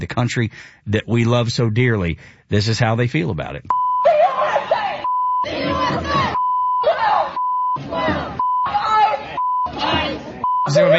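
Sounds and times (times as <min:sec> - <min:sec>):
speech: 0:00.0 - 0:03.8, 0:10.7 - 0:10.9
high-pitched censor beeps: 0:03.7 - 0:04.2, 0:05.0 - 0:10.9
protest crowd shouting and chanting: 0:04.1 - 0:10.9.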